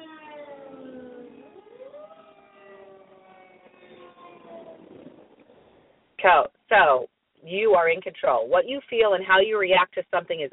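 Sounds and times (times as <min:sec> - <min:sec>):
ambulance siren wailing: 0:00.0 - 0:05.8
low rumble of traffic: 0:00.0 - 0:06.8
speech: 0:06.2 - 0:10.5.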